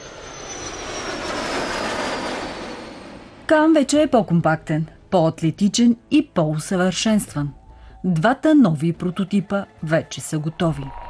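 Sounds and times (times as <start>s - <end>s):
Turkish fifth-generation Kaan fighter jet engine roaring with high whine: 0.0s - 3.5s
speech: 3.5s - 11.0s.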